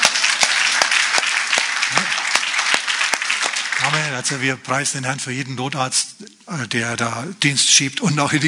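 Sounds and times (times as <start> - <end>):
congregation applauding: 0.0 - 4.6
speech: 4.2 - 8.4.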